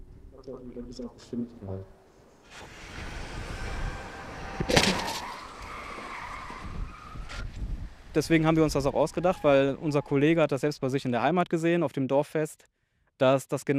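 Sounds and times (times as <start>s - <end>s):
speech: 0.4s - 2.8s, 8.2s - 13.7s
truck slamming into a barrier made of a car: 2.5s - 7.3s
truck roaring in at 64 km/h during a crash test: 2.5s - 10.2s.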